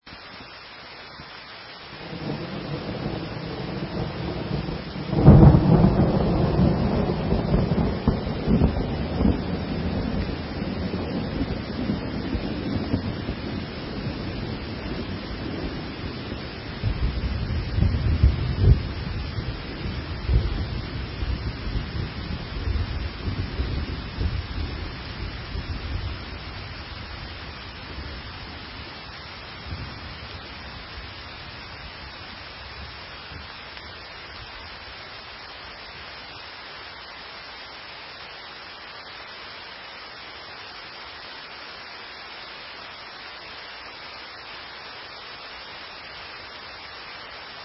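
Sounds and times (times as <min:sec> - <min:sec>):
rain: 0:00.0 - 0:47.6
thunder: 0:02.0 - 0:26.4.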